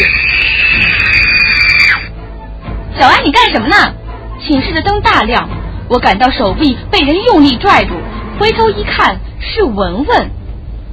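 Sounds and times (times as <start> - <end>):
person screaming: 0.0 - 2.1
speech: 3.0 - 10.4.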